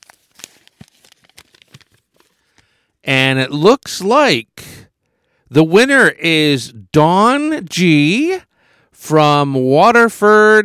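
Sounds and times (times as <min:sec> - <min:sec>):
paper slip being unfolded from a draw: 0:00.0 - 0:02.8
speech: 0:03.1 - 0:04.7, 0:05.5 - 0:10.6.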